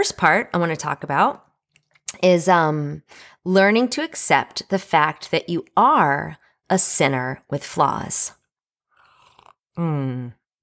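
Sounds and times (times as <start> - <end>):
speech: 0.0 - 1.5, 2.1 - 8.4, 9.8 - 10.6
person slurping a sip of coffee: 8.9 - 9.7.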